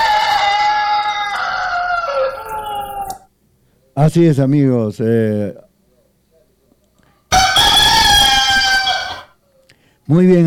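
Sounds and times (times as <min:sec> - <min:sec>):
rooster crowing: 0:00.0 - 0:03.3, 0:07.3 - 0:09.4
speech: 0:04.0 - 0:05.6, 0:10.1 - 0:10.4.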